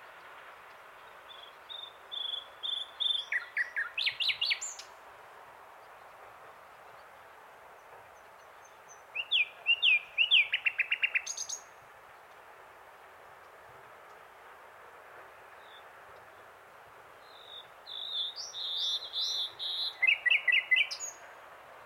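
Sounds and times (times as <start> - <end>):
common nightingale Luscinia megarhynchos song: 0.0 - 5.0, 5.7 - 12.4, 17.2 - 21.8.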